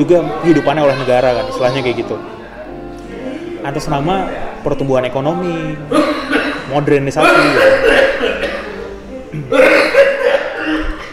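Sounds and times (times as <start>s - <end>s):
speech: 0.0s - 2.4s, 3.6s - 8.3s
man coughing harshly: 5.9s - 11.1s.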